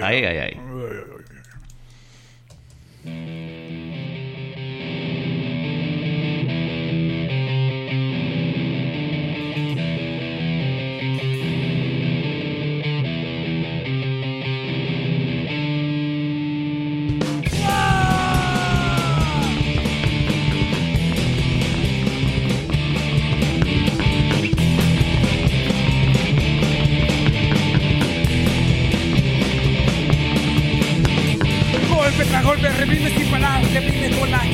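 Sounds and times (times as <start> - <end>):
speech: 0.0 - 0.6
distorted guitars in a band demo recording: 3.0 - 34.5
pounding drums in a band demo recording: 17.4 - 22.1
shouted vocals in a band demo recording: 17.5 - 19.8.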